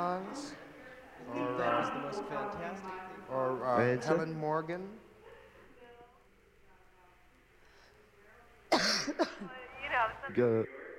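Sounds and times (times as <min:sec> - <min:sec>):
speech: 0:00.0 - 0:00.6, 0:01.2 - 0:05.0, 0:09.0 - 0:10.8
faint hum: 0:00.0 - 0:10.9
woman coughing with harsh raspy hacking: 0:08.7 - 0:09.5.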